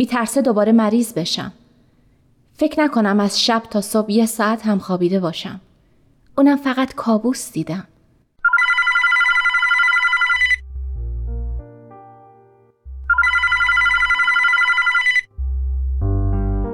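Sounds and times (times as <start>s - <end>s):
speech: 0.0s - 1.6s, 2.6s - 5.7s, 6.4s - 7.9s
telephone ringing in bright electronic bursts: 8.4s - 10.6s, 13.1s - 15.3s
low rumbling tonal music-like sounds: 10.6s - 11.7s, 12.8s - 14.2s, 15.3s - 16.7s.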